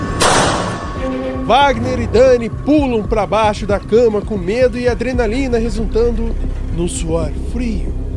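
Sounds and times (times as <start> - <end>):
gunshot sound effect: 0.2 - 1.0
speech: 1.5 - 7.9.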